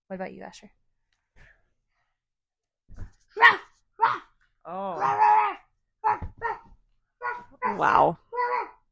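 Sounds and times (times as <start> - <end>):
speech: 0.1 - 0.8, 4.7 - 5.2, 7.7 - 8.2
child on all fours imitating a dog barking: 3.4 - 8.9.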